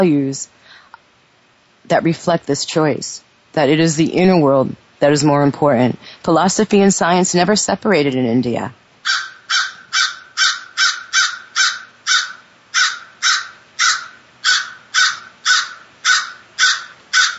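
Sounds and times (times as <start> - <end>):
speech: 0.0 - 0.6, 1.9 - 9.3
crow cawing: 9.0 - 17.3.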